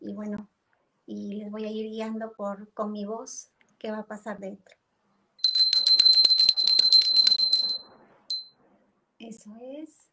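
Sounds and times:
speech: 0.2 - 0.5, 1.1 - 4.8, 9.2 - 10.1
small high-pitched meditation bell ringing: 5.4 - 8.5.

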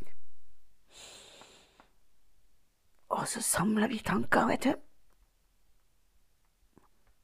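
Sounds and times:
deep breath in: 0.9 - 2.0
speech: 3.2 - 4.9.

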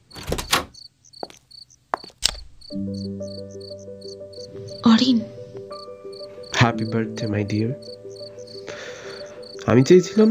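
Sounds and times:
door being opened: 0.0 - 0.8, 2.2 - 2.7
insects chirping faintly: 0.0 - 10.2
speech: 2.7 - 4.1, 5.0 - 5.4, 6.6 - 8.0, 9.7 - 10.2.

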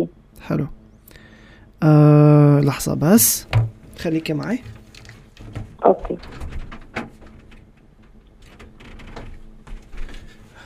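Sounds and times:
speech: 0.0 - 0.8, 1.8 - 4.8, 5.5 - 6.5
low steady hum of room noise: 0.0 - 10.6
door being pushed shut: 3.4 - 10.2.

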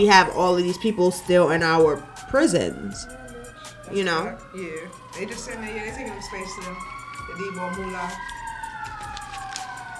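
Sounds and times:
speech: 0.0 - 3.2, 3.9 - 8.4
emergency vehicle siren wailing: 0.0 - 9.9.

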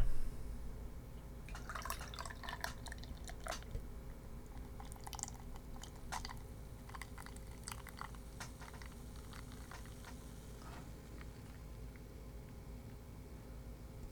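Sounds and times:
low hum: 0.0 - 14.1
hazy gold beer being poured into a glass: 1.5 - 12.6.

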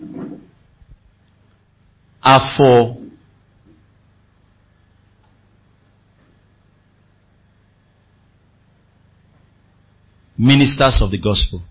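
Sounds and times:
chairs being shifted into position by ushers: 0.0 - 0.6
speech: 2.2 - 3.0, 10.4 - 11.6.

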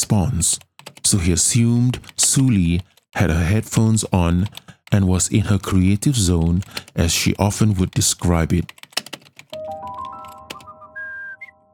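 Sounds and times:
speech: 0.1 - 8.8
person whistling softly: 10.6 - 11.7.

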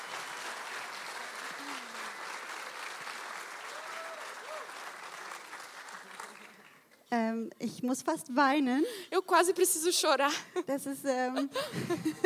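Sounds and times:
sizable crowd applauding: 0.0 - 6.9
speech: 7.1 - 12.2.

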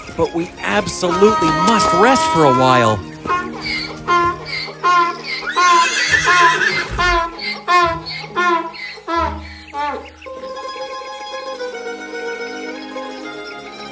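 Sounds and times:
speech: 0.1 - 3.1
horse neighing: 1.0 - 10.1.

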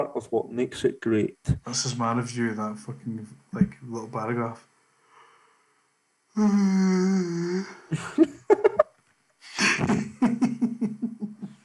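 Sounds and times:
speech: 0.0 - 4.7, 6.4 - 8.6
person yawning: 6.4 - 8.0
rhythmic pulsing laughter: 7.9 - 8.9, 9.5 - 11.6.

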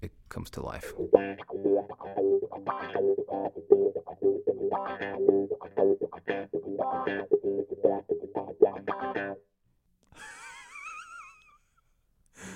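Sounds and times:
speech: 0.0 - 9.5
funk guitar riff played through a wah pedal: 1.0 - 9.4
laughter: 10.2 - 11.7.

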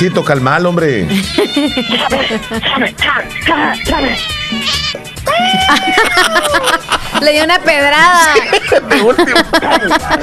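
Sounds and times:
speech: 0.0 - 10.2
laughter: 1.1 - 4.0, 5.3 - 10.2
cat meowing and yowling: 1.3 - 2.6, 3.7 - 6.6.

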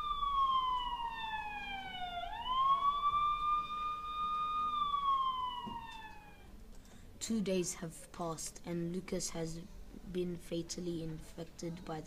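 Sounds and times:
police car siren wailing: 0.0 - 6.6
low rumble of traffic: 0.0 - 12.0
speech: 7.3 - 12.0.

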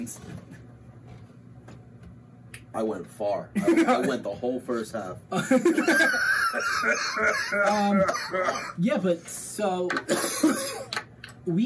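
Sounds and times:
speech: 0.0 - 0.6, 2.8 - 11.6
strained laughing vocal sounds: 5.4 - 8.8
rough coughing: 5.7 - 8.8, 10.1 - 11.0
throat-clearing: 6.8 - 8.8.

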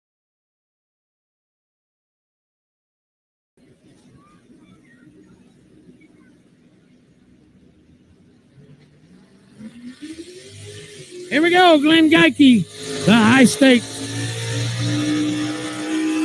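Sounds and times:
pulling tractor engine running at a tractor pull: 3.8 - 16.2
speech: 11.3 - 13.9.

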